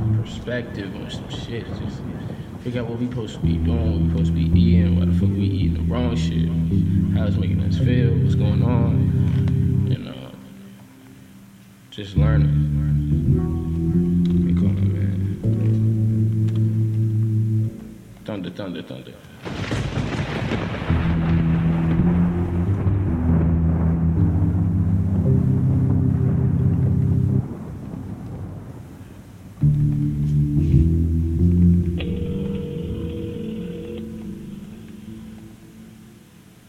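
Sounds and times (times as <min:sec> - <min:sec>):
steady low droning musical tones: 0:00.0 - 0:01.7, 0:02.7 - 0:18.6, 0:20.7 - 0:28.8, 0:29.6 - 0:36.6
thunder crack and rumble: 0:00.0 - 0:08.6, 0:19.4 - 0:30.0
speech: 0:00.3 - 0:09.5, 0:12.0 - 0:13.5, 0:18.4 - 0:19.8.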